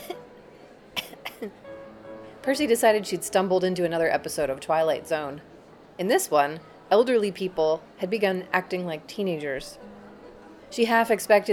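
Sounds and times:
woman coughing: 0.0 - 0.2, 1.0 - 1.6
speech: 1.4 - 1.7, 2.4 - 9.9, 10.7 - 11.5.

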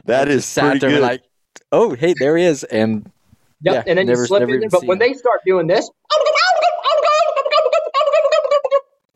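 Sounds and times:
speech: 0.0 - 6.7
person imitating turkey gobbles: 6.0 - 9.1.

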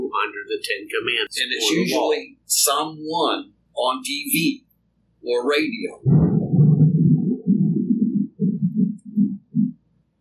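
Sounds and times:
speech: 0.6 - 6.2
thunder rumbling: 6.0 - 9.7.

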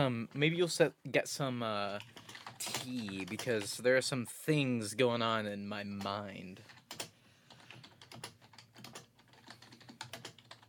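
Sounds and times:
speech: 0.0 - 6.8
forceful typing on a computer keyboard: 1.9 - 3.8, 6.0 - 10.6.

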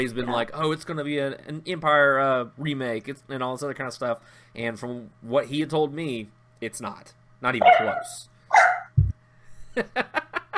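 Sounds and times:
speech: 0.0 - 8.6, 9.8 - 10.2
dogs barking: 7.6 - 9.0
low thump: 9.0 - 9.2.

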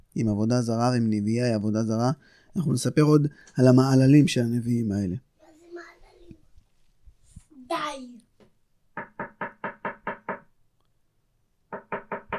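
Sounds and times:
speech: 0.2 - 5.3
child speaking: 5.4 - 6.5, 7.5 - 8.3
knocking on a door: 9.0 - 10.5, 11.7 - 12.3.

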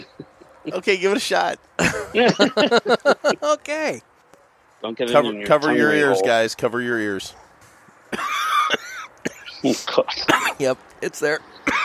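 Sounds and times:
laughter: 0.0 - 3.8
speech: 0.1 - 4.1, 4.8 - 7.4, 9.6 - 11.7
stifled cough after smoking a strong cigar: 1.8 - 3.0, 8.1 - 10.6, 11.6 - 11.8.

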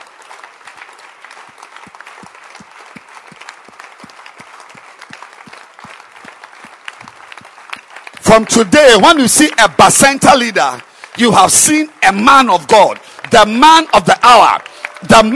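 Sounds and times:
audience applause at a religious gathering: 0.0 - 15.3
speech: 8.3 - 15.3.

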